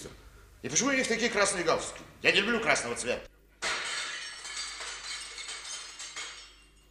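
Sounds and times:
speech: 0.6 - 3.3
mirror glass shattering: 3.6 - 6.8.

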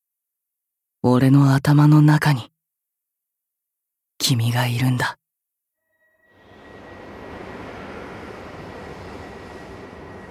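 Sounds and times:
speech: 1.0 - 2.5, 4.3 - 5.2
faint high whine of arriving train: 5.8 - 10.2
train rumbling into station alongside platform: 6.0 - 10.2.

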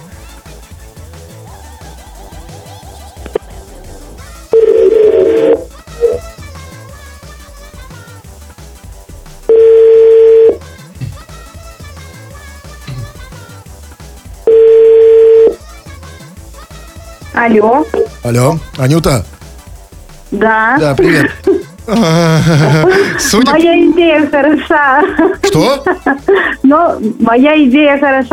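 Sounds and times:
steady mid-pitched telephone line tone: 4.6 - 5.6, 9.5 - 10.6, 14.5 - 15.6
speech: 17.5 - 19.3, 20.3 - 28.3
laughter: 20.9 - 26.8.

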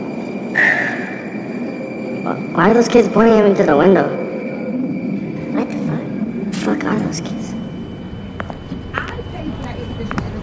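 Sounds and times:
sharp high squeal of a metro train: 0.0 - 5.5
metro train rumbling through a station: 0.0 - 10.4
speech: 2.6 - 4.2, 6.8 - 7.6.

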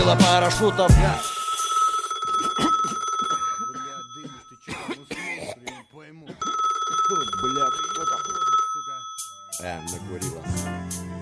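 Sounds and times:
speech: 0.1 - 1.4
intermittent ringback tone in a phone receiver after dialing: 1.2 - 4.6, 6.4 - 9.6.

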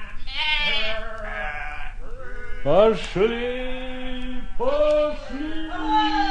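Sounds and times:
sheep bleating: 0.1 - 2.0
speech: 2.6 - 3.7, 4.6 - 6.2.

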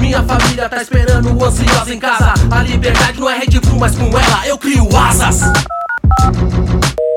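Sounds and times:
speech: 0.1 - 7.0
telephone dialing beeps: 5.4 - 6.3.

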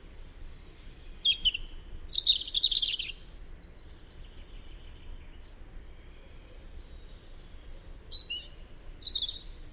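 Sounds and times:
European robin Erithacus rubecula singing high warbled phrases: 0.9 - 3.2, 7.8 - 9.5.

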